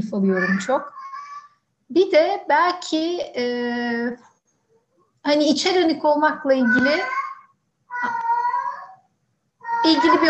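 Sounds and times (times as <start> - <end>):
speech: 0.0 - 1.0, 1.9 - 4.3, 5.2 - 7.2, 9.8 - 10.2
pet cat meowing and caterwauling: 0.3 - 1.5, 6.4 - 9.0, 9.6 - 10.2.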